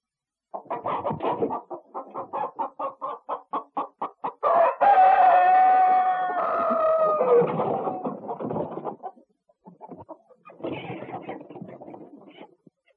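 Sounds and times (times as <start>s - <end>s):
chicken clucking: 0.5s - 12.9s
rooster crowing: 4.4s - 7.5s.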